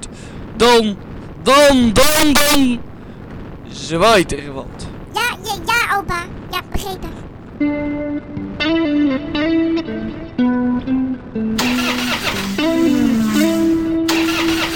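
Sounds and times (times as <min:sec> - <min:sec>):
speech: 0:00.6 - 0:02.9, 0:03.7 - 0:04.8, 0:05.4 - 0:11.4
new car engine starting and running: 0:11.6 - 0:14.7.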